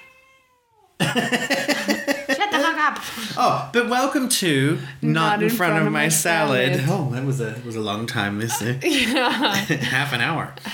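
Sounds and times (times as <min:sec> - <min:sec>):
cat meowing while watching a bird: 0:00.0 - 0:01.0
laughter: 0:01.0 - 0:03.6, 0:08.5 - 0:10.6
speech: 0:01.2 - 0:01.4, 0:02.9 - 0:10.7.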